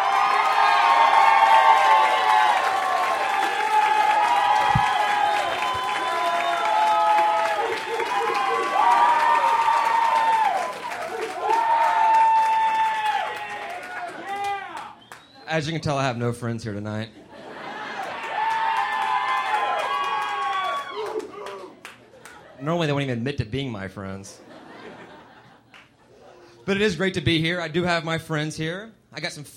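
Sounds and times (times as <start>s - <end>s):
many audience voices whooping and shouting: 0.0s - 15.0s, 17.9s - 21.8s
large audience clapping: 0.3s - 15.4s, 18.0s - 22.6s, 25.5s - 26.0s
speech: 15.6s - 17.2s, 22.6s - 24.5s, 26.7s - 29.5s
laughter: 17.1s - 18.4s, 24.4s - 26.6s.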